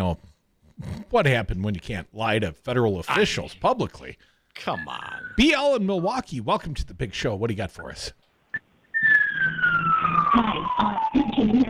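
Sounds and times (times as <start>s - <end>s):
speech: 0.0s - 9.7s, 10.3s - 11.6s
ambulance siren wailing in a falling tone through a phone line: 4.7s - 5.8s, 8.9s - 11.6s.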